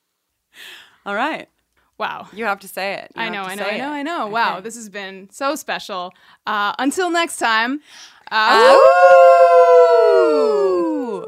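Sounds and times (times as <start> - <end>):
speech: 1.0 - 11.2
people howling like wolves: 8.5 - 11.2.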